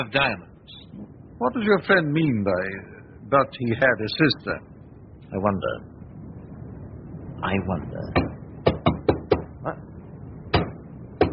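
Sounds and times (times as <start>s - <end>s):
speech: 0.0s - 4.7s, 5.3s - 5.9s, 7.4s - 8.2s, 9.6s - 9.9s
hollow knocking from inside a cupboard: 8.1s - 9.5s.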